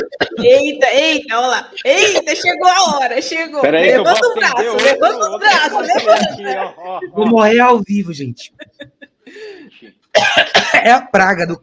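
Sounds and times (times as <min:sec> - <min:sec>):
person coughing fit: 0:00.0 - 0:00.8, 0:10.0 - 0:11.0
speech: 0:00.0 - 0:11.6
laughter: 0:03.9 - 0:07.4, 0:08.4 - 0:10.0
strained wheezing breath in: 0:09.2 - 0:09.9.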